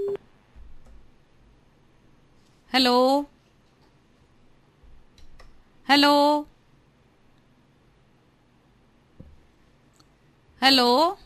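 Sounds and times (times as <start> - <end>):
electronic phone-line tone as a phone call disconnects: 0.0 - 0.2
quiet hiss: 0.0 - 11.2
speech: 2.7 - 3.3, 5.9 - 6.5, 10.6 - 11.2.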